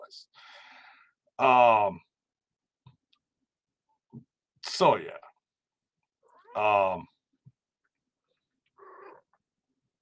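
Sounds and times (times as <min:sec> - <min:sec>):
speech: 0:00.1 - 0:00.4, 0:01.4 - 0:02.1, 0:04.8 - 0:05.2, 0:06.6 - 0:07.1
excited female cat meowing: 0:08.8 - 0:09.2.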